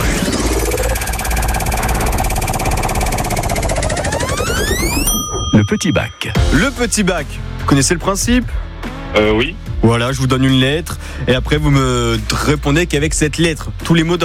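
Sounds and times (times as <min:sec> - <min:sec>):
prize wheel spinning in a radio game: 0:00.2 - 0:06.6
speech: 0:05.6 - 0:14.2.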